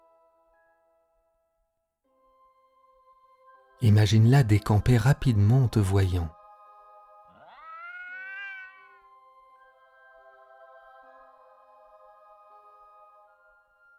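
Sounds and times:
speech: 0:03.8 - 0:06.4
cat meowing: 0:07.3 - 0:09.1.

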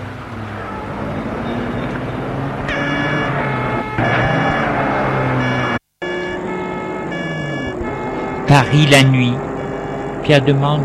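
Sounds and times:
car driving with steady loud engine and road rumble: 0:00.0 - 0:10.8
speech: 0:08.5 - 0:09.5, 0:10.3 - 0:10.8.

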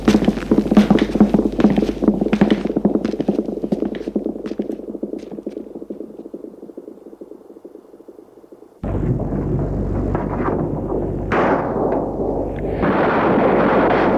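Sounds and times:
low rumbling: 0:00.0 - 0:14.1
dense chaotic gunfire barrage: 0:10.0 - 0:14.1.

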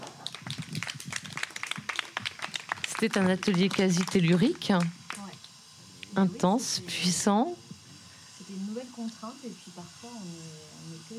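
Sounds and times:
small audience applauding after a reading at a writing workshop: 0:00.0 - 0:05.3
speech: 0:03.0 - 0:05.0, 0:06.2 - 0:07.6, 0:09.0 - 0:11.1.

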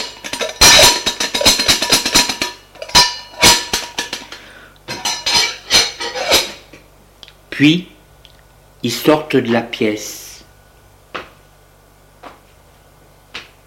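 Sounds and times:
metallic lid clanking as it is set back in place: 0:00.0 - 0:06.8
speech: 0:07.6 - 0:07.9, 0:08.8 - 0:10.2.

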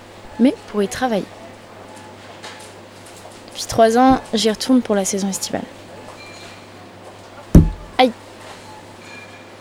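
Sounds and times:
quiet hum: 0:00.0 - 0:06.6, 0:07.5 - 0:08.2
speech: 0:00.4 - 0:01.4, 0:03.6 - 0:05.8
glass refrigerator door slammed shut in a supermarket: 0:04.0 - 0:04.4, 0:07.6 - 0:08.1.

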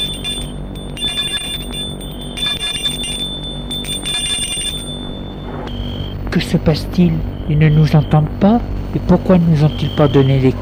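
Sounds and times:
electric house doorbell ringing: 0:00.0 - 0:05.7
steady hum: 0:00.0 - 0:10.6
speech: 0:06.4 - 0:10.6.

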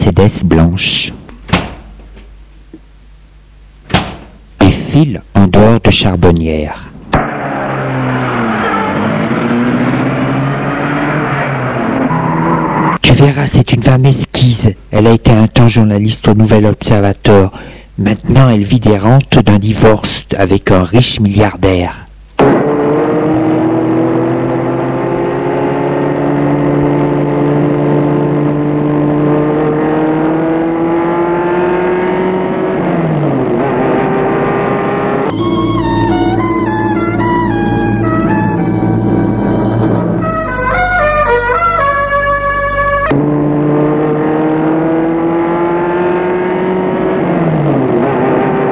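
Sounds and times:
speech: 0:00.2 - 0:01.2, 0:05.0 - 0:07.3, 0:13.1 - 0:22.6
car engine droning as the vehicle slows to a stop: 0:07.0 - 0:13.1, 0:22.4 - 0:48.7.

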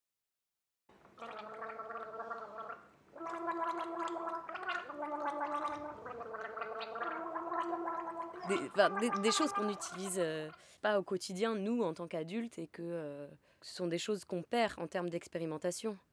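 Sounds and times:
guttural wet baby-like babbling with saliva: 0:01.2 - 0:10.7
speech: 0:08.5 - 0:16.1.

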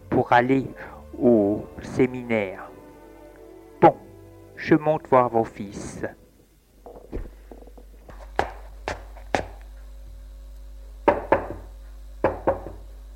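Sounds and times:
speech: 0:00.2 - 0:02.7, 0:03.8 - 0:04.0, 0:04.6 - 0:06.2
knocking on a wooden bedroom door: 0:11.1 - 0:12.8.

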